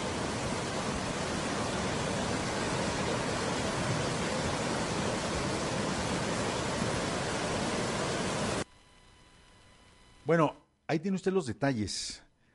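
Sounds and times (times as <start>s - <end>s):
rushing water of a suddenly swollen river in San Gabriel: 0.0s - 8.6s
speech: 10.3s - 12.3s.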